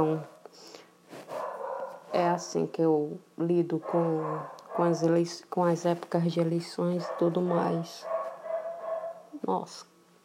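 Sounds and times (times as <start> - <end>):
speech: 0.0 - 0.7, 2.1 - 8.1, 9.4 - 9.9
dog sniffing or snorting: 1.1 - 1.8
dog barking and yelping: 1.3 - 2.2, 3.8 - 5.0, 7.0 - 9.4.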